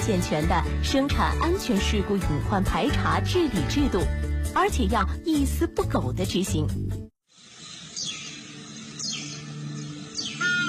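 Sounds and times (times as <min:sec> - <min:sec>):
speech: 0:00.0 - 0:07.0
crested ibis calling: 0:07.4 - 0:10.6.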